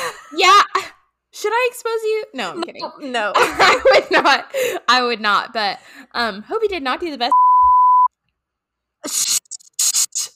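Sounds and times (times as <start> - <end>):
speech: 1.4 - 7.4, 9.0 - 9.4
laughter: 3.4 - 4.6
short sharp electronic censor beep: 7.3 - 8.1.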